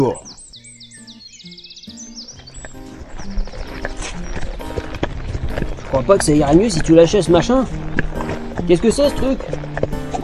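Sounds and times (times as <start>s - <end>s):
speech: 0.0s - 0.3s, 5.9s - 7.8s, 8.6s - 9.6s
birds chirping and tweeting: 0.0s - 10.2s
two horses' hooves clip-clopping: 2.0s - 10.2s.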